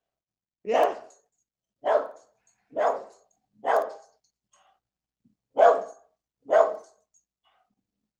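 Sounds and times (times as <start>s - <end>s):
speech: 0.6s - 1.1s
dog barking: 0.7s - 1.2s, 1.8s - 4.2s, 5.5s - 7.0s.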